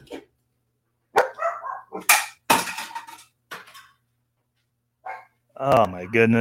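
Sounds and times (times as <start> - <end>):
dogs barking: 1.1 - 2.2, 5.0 - 5.4
speech: 5.6 - 6.3.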